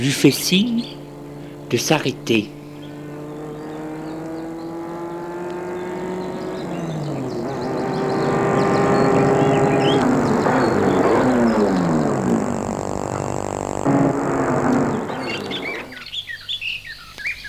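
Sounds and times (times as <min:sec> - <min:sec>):
speech: 0:00.0 - 0:01.0, 0:01.7 - 0:02.6
car engine approaching on a quiet country road: 0:00.0 - 0:16.3
birds chirping in open countryside: 0:00.0 - 0:17.4.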